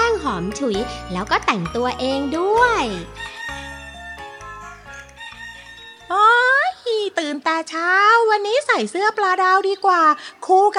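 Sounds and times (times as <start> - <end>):
steady musical backing: 0.0 - 7.2
speech: 0.3 - 3.3, 7.1 - 10.7
rooster crowing: 2.9 - 6.2.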